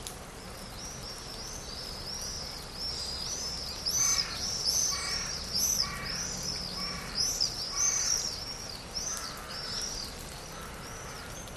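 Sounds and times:
steady background hiss: 0.0 - 11.5
high twittering of other birds in a spring forest in Cyprus: 0.4 - 11.5
crow cawing in a wet misty spring forest in Cyprus: 4.0 - 8.4, 9.0 - 11.4.

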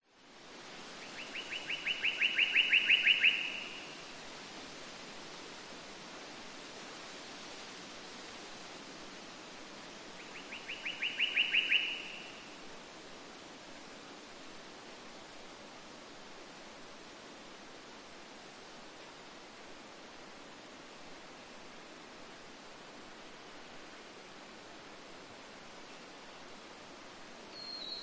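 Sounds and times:
winter nature forest ambience in Queensland Australia: 0.0 - 28.0
short unidentified bird call in Queensland Australia forest: 1.0 - 3.9, 10.3 - 12.5, 27.5 - 28.0.

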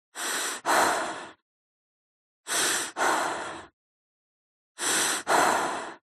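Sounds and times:
woman breathing deeply: 0.2 - 1.4, 2.5 - 3.8, 4.8 - 6.0.

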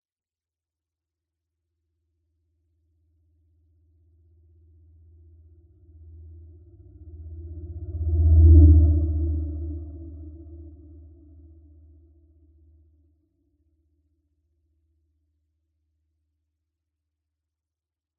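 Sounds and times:
science fiction spacecraft or other vehicle passing by humming: 6.9 - 11.5.

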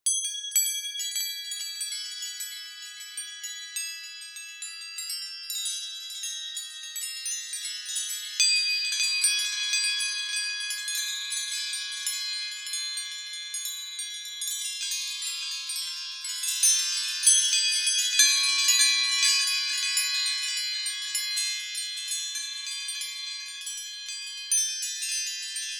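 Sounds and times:
small gentle metallic synthesized windchimes: 0.1 - 25.7.

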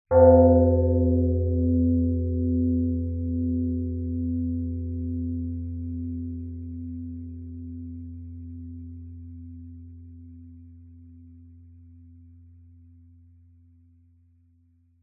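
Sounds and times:
large gong-like bell struck with mallet: 0.1 - 5.9.

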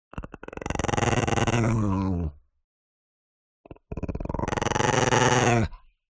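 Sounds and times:
Chihuahua dog growling and snarling: 0.1 - 2.4, 3.7 - 5.9.

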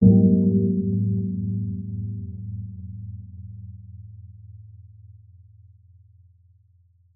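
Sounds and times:
muffled low heavy ponderous gong: 0.0 - 4.8.

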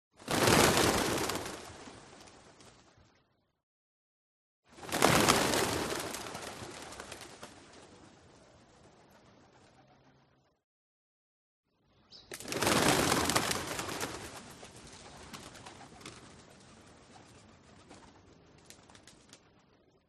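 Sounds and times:
pigeon flock rising: 0.2 - 3.0, 4.7 - 10.2, 12.3 - 20.0.

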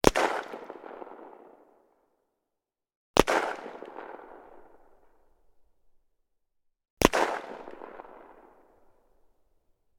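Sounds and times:
Mosin-Nagant rifle gunshot: 0.0 - 1.5, 3.2 - 4.8, 7.0 - 8.8.

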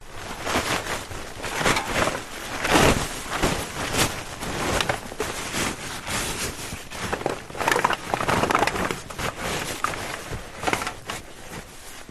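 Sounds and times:
plastic sheet being adjusted on a snowmobile trailer: 0.0 - 12.0
empty cans on a snowmobile trailer: 7.0 - 11.1.

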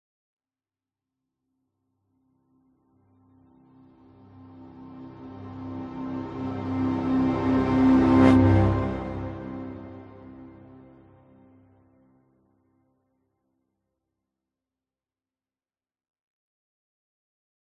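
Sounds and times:
strings: 3.4 - 12.2
dramatic cinematic orchestral music riser: 4.6 - 11.2.

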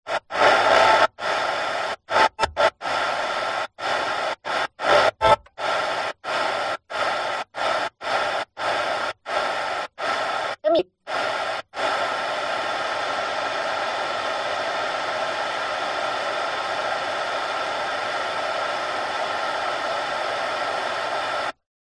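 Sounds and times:
car radio static tuning through stations on a speaker: 0.0 - 21.6.

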